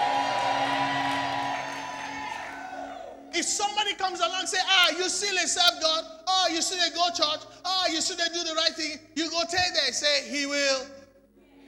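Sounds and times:
audience shouting and cheering: 0.0 - 3.7
speech: 3.5 - 11.0.

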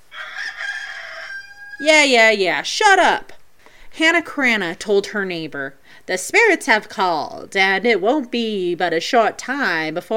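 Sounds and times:
rooster crowing cock-a-doodle-doo: 0.0 - 1.9
speech: 1.8 - 3.4, 4.0 - 10.1.

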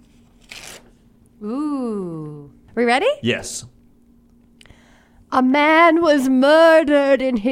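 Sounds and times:
paper tearing: 0.0 - 1.0
speech: 1.4 - 2.2, 2.8 - 3.8, 5.3 - 7.4.

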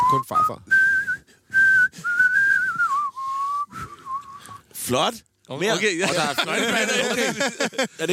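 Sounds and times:
person whistling: 0.0 - 4.8
speech: 0.1 - 0.8, 4.8 - 8.1
laughter: 5.8 - 8.1.

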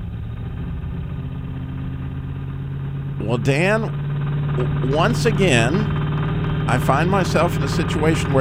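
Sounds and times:
older car engine idling with fan hitting the radiator: 0.0 - 8.4
speech: 3.2 - 4.0, 4.6 - 6.0, 6.7 - 8.4.

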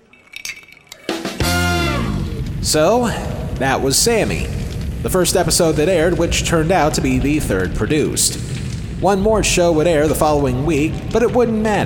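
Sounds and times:
glasses clinking in a toast: 0.0 - 1.4
speech: 2.6 - 11.8.

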